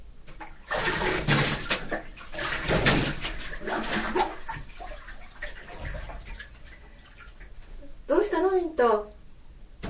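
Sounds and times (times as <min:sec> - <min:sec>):
bath water sloshing and splashing in a filled tub: 0:00.3 - 0:07.8
speech: 0:08.5 - 0:09.1.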